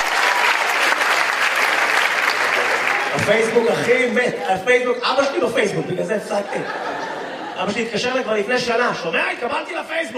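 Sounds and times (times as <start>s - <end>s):
audience applause: 0.0s - 4.6s
speech: 3.3s - 6.9s, 7.6s - 10.1s
laughter: 5.6s - 9.0s.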